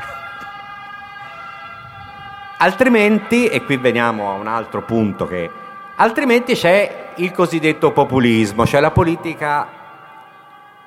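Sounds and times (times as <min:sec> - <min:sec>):
ambulance siren with a bright piercing electronic wail: 0:00.0 - 0:10.8
speech: 0:02.6 - 0:09.8.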